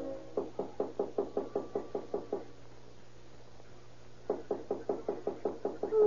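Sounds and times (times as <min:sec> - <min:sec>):
firm knocking on a door at night: 0:00.4 - 0:02.5, 0:04.3 - 0:06.0.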